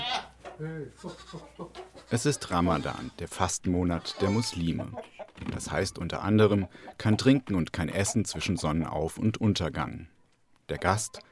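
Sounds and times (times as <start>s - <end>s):
goats bleating: 0.0s - 0.3s, 0.9s - 3.2s, 3.8s - 4.9s
speech: 0.6s - 11.3s.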